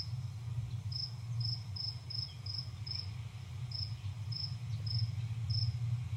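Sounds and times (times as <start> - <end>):
constant low hum: 0.0 - 6.1
crickets chirping: 0.9 - 5.8.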